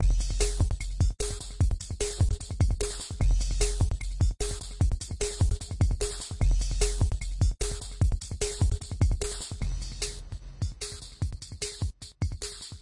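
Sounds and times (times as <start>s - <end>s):
music loop: 0.0s - 12.8s.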